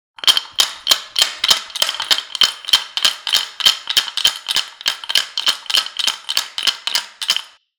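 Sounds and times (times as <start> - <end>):
shaking rattle: 0.2 - 7.6.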